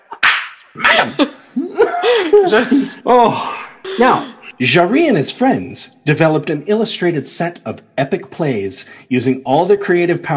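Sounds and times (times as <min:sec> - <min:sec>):
teacher's slapping stick slapping: 0:00.0 - 0:00.7
laughter: 0:00.0 - 0:04.6
speech: 0:00.7 - 0:10.3.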